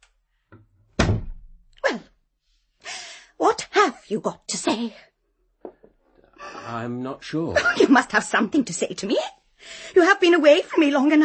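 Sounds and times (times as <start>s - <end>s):
door thudding shut: 1.0s - 1.6s
speech: 4.1s - 5.1s, 6.7s - 11.2s.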